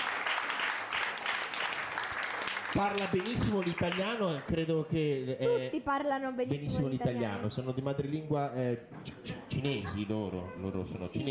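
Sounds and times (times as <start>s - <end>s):
crowd applauding: 0.0s - 4.9s
speech: 2.8s - 11.2s.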